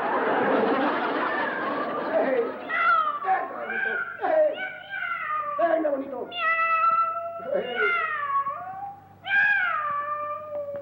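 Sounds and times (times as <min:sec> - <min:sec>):
laughter: 0:00.0 - 0:03.4
cat meowing and yowling: 0:02.7 - 0:10.8.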